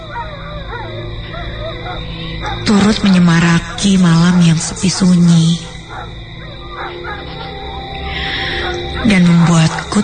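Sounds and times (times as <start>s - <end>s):
dog howling and whimpering at night in a backyard: 0.0s - 2.7s, 5.7s - 8.0s
speech: 1.9s - 5.7s, 9.0s - 10.0s.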